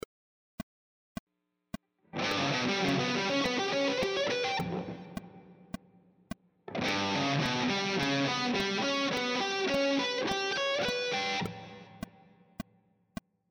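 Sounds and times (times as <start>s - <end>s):
guitar triad arpeggio sequences: 2.2s - 5.7s, 6.7s - 12.0s.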